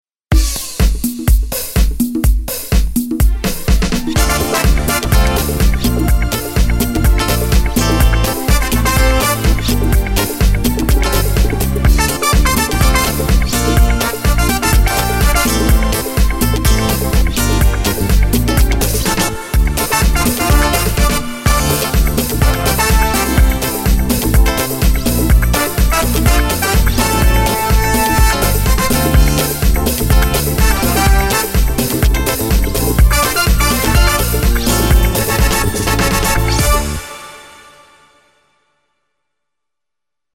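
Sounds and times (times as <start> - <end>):
seventies disco style on a Korg Pa3X keyboard: 0.3 - 37.3.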